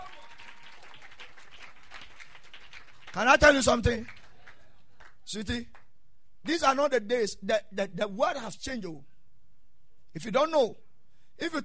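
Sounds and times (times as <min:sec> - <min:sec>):
audience clapping hands: 0:00.0 - 0:05.9
speech: 0:03.1 - 0:04.2, 0:05.3 - 0:05.8, 0:06.4 - 0:09.1, 0:10.1 - 0:10.8, 0:11.4 - 0:11.6.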